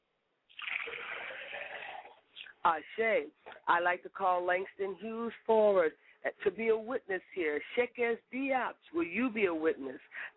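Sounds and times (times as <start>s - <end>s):
liquid being poured: 0.5s - 2.5s
speech: 2.6s - 10.3s.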